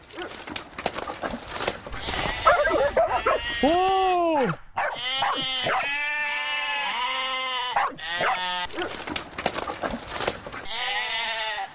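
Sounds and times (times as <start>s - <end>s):
flock of sheep hooves clattering while being herded: 0.0s - 4.1s, 8.7s - 10.7s
sheep bleating: 1.9s - 4.1s, 4.8s - 8.9s, 10.6s - 11.7s
speech: 3.6s - 4.6s.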